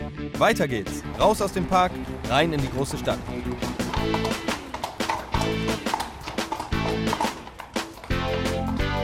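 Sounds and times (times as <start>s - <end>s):
speech: 0.1s - 4.5s
loud brass band music: 0.4s - 7.4s
police horses' hooves clip-clopping on hard ground in a park: 0.7s - 9.0s.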